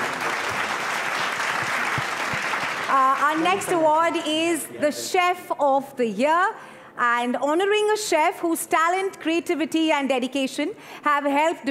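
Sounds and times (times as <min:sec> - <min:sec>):
large audience applauding for award winner: 0:00.0 - 0:03.8
speech: 0:02.9 - 0:11.6.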